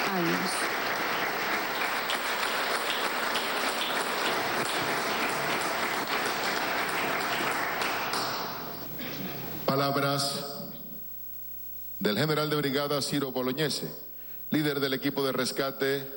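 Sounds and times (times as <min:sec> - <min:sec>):
crowd applauding a rescue team: 0:00.0 - 0:09.7
speech: 0:09.8 - 0:10.5, 0:12.1 - 0:16.1.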